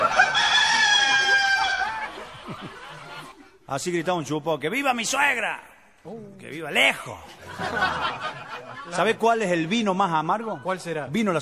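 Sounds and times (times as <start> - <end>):
chicken crowing and clucking: 0.0 - 2.1
laughter: 0.0 - 3.7, 7.0 - 11.1
speech: 3.7 - 11.3.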